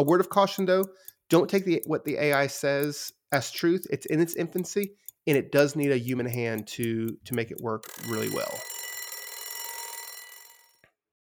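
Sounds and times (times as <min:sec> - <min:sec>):
speech: 0:00.0 - 0:08.7
timer click: 0:00.0 - 0:10.8
timer buzzer ringing: 0:07.8 - 0:10.8.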